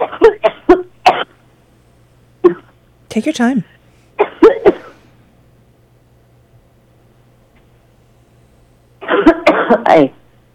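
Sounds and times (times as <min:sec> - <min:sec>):
person coughing: 0:00.0 - 0:01.4, 0:02.4 - 0:02.8, 0:04.2 - 0:05.1, 0:09.0 - 0:09.9
faint low hum: 0:00.2 - 0:10.5
speech: 0:03.1 - 0:03.8, 0:09.8 - 0:10.2.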